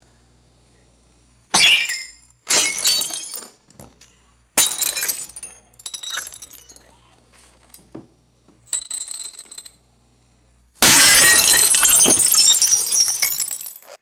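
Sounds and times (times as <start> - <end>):
glass objects shattering: 1.5 - 3.6, 4.6 - 6.8, 10.8 - 14.0
glass shards scattering: 1.5 - 6.9, 10.8 - 14.0.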